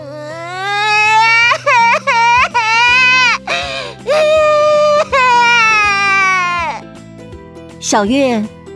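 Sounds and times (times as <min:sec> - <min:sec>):
young girl crying beside a toy box before her nap: 0:00.0 - 0:06.8
speech: 0:07.9 - 0:08.6.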